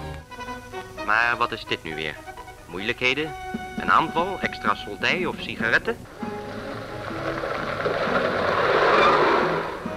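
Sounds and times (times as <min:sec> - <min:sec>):
speech: 0:01.1 - 0:06.2
army truck rushing past with broad engine roar: 0:06.0 - 0:09.9
army truck braking hard with squealing brakes and tires: 0:06.3 - 0:09.9.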